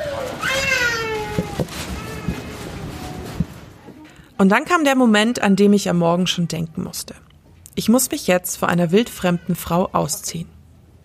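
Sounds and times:
child wailing scream: 0.0 - 3.4
speech: 4.4 - 7.2, 7.8 - 10.6.

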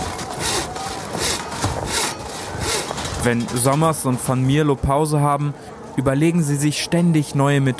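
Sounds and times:
hand saw rasping through thick sea ice on an ice floe: 0.4 - 3.0
speech: 3.2 - 7.7.

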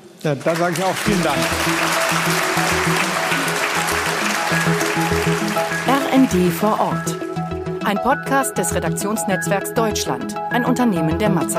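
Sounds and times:
speech: 0.2 - 3.1, 6.3 - 7.3, 7.9 - 11.5
audience applause: 0.3 - 7.4.

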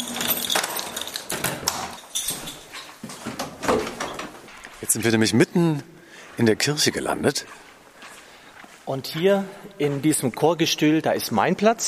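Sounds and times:
clunky metallic key unlocking a heavy old door: 0.0 - 4.4
speech: 4.9 - 7.7, 8.9 - 11.8.

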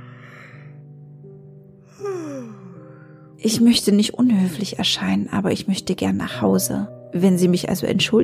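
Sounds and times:
person giving a long voiced yawn: 1.9 - 3.1
speech: 2.0 - 2.7, 3.4 - 8.2.

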